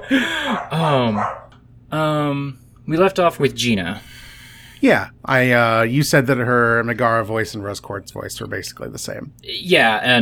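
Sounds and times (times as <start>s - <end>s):
dog barking: 0.0s - 1.6s
speech: 0.1s - 4.2s, 4.8s - 10.2s.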